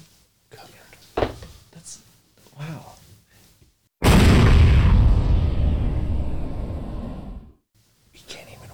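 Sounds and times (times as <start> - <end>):
speech: 1.8 - 2.9
cannon firing boom: 4.0 - 7.5.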